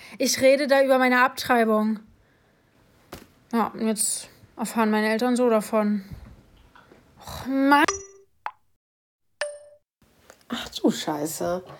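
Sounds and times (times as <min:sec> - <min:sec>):
speech: 0:00.1 - 0:02.1, 0:03.5 - 0:06.2, 0:07.2 - 0:07.9, 0:10.5 - 0:11.7
phone message notification chime: 0:09.4 - 0:09.8.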